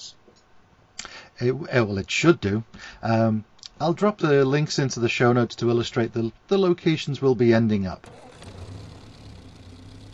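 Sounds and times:
speech: 1.4 - 8.3
car engine idling with a low rumble: 8.0 - 10.1.

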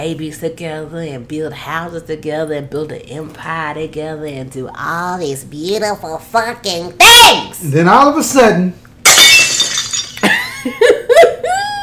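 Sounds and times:
speech: 0.0 - 9.2
glass shattering: 9.0 - 10.6
glass pieces tinkling as they fall: 9.1 - 10.6.

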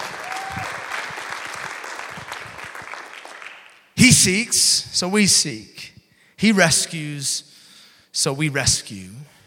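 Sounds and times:
crowd applauding: 0.0 - 3.8
speech: 4.0 - 5.8, 6.4 - 7.5, 8.2 - 9.4.

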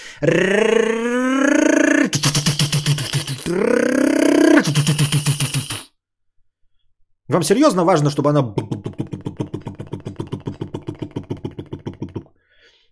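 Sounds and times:
speech: 0.2 - 0.9, 3.5 - 3.8, 7.3 - 8.8
voice imitating a revving car engine: 0.2 - 6.0, 8.4 - 12.4.

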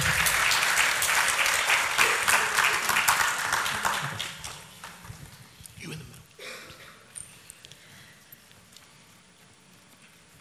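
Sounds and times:
audience applause: 0.0 - 5.4.

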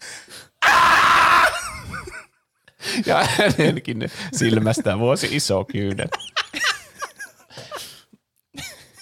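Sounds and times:
performed human scream of someone falling: 0.6 - 1.8
speech: 3.0 - 6.4
laughter: 4.3 - 7.8.

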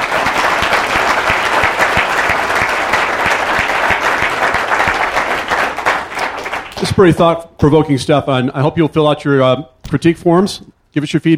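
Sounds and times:
audience applause thanking panelists at a panel discussion: 0.0 - 7.1
speech: 7.0 - 11.3.

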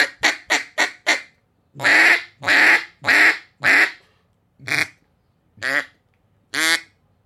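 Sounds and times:
duck call making flat and pressurized quacks: 0.0 - 4.0, 4.6 - 5.0, 5.6 - 7.0.

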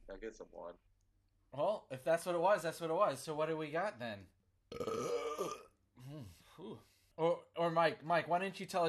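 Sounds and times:
speech: 0.1 - 0.9, 1.5 - 5.6, 6.2 - 8.8
long loud rumbling burp: 4.7 - 5.7.

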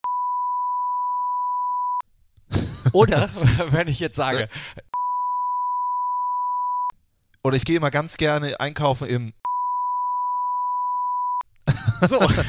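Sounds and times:
censor bleep tone: 0.0 - 2.0, 5.0 - 6.9, 9.5 - 11.4
laughter: 2.5 - 4.6, 11.7 - 12.4
speech: 2.9 - 4.9, 7.4 - 9.4, 12.0 - 12.4.

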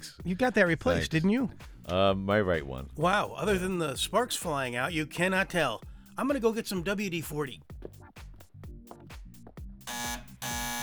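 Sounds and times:
speech: 0.2 - 8.0
loud harsh buzzer: 9.9 - 10.8.

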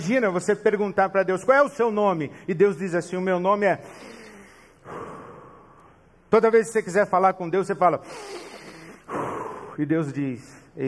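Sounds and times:
speech: 0.0 - 4.2, 6.3 - 8.5, 9.1 - 10.8
single audible breath drawn in softly and exhaled: 3.8 - 5.9, 8.0 - 9.8.

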